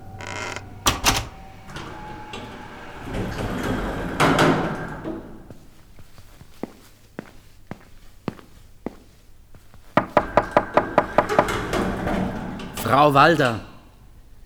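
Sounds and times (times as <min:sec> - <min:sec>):
apartment door shutting with a sharp bang: 0:00.0 - 0:05.5, 0:10.0 - 0:13.6
firm knocks on an apartment door: 0:10.0 - 0:11.5
speech: 0:12.9 - 0:13.7.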